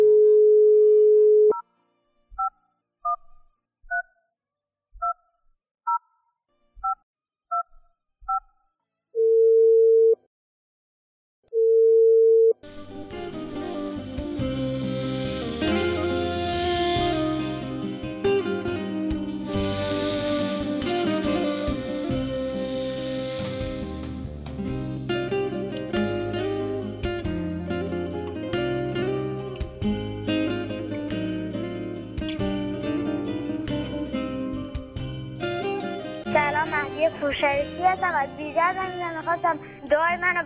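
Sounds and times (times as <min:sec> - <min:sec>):
telephone dial tone: 0:00.0 - 0:01.6, 0:09.2 - 0:10.2, 0:11.5 - 0:12.6
music: 0:12.6 - 0:40.4
speech: 0:37.4 - 0:40.4.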